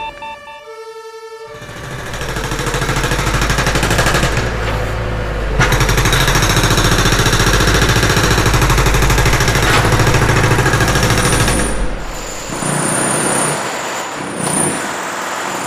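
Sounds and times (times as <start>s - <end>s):
constant rumble of machinery: 1.5s - 12.7s
jackhammer pounding on a city street: 1.5s - 15.6s.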